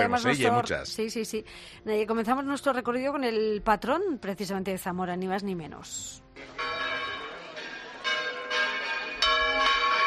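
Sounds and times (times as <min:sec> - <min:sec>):
speech: 0:00.0 - 0:06.8
church bells pealing: 0:06.4 - 0:10.0.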